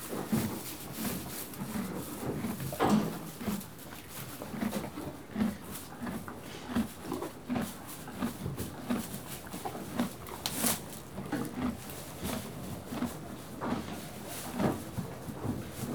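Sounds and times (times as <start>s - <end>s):
horse chewing hay: 0.0s - 15.9s.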